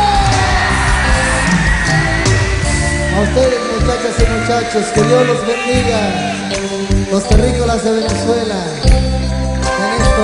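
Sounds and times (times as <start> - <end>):
whoops and yells: 0.0 - 6.6
large audience shouting and cheering after a song: 0.0 - 8.8
large audience applauding after a song: 0.0 - 10.2
speech: 3.2 - 9.4.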